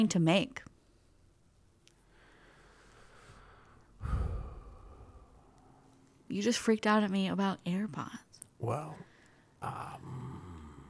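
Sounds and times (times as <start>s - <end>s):
speech: 0.0s - 0.7s, 6.3s - 10.4s
person's low throaty grumble during an argument: 4.0s - 5.2s, 9.6s - 10.8s.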